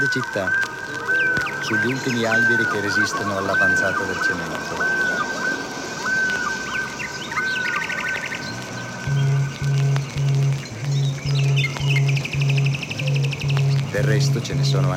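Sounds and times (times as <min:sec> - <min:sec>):
blackbird singing: 0:00.0 - 0:14.9
regular low tonal pulses: 0:00.0 - 0:14.9
speech: 0:00.1 - 0:00.7, 0:01.6 - 0:05.0, 0:14.0 - 0:14.9
steady low hum: 0:04.4 - 0:14.9.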